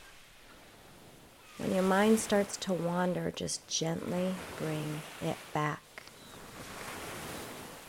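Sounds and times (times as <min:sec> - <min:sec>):
ocean waves crashing onto a beach: 0:00.0 - 0:07.8
wind: 0:00.0 - 0:07.8
speech: 0:01.6 - 0:05.8.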